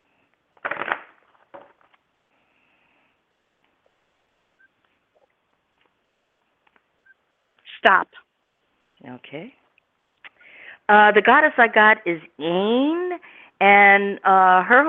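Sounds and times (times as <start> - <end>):
deck of cards riffle shuffled for a card reading: 0.6 - 2.0
speech: 7.8 - 8.2, 9.0 - 9.6, 10.9 - 14.8.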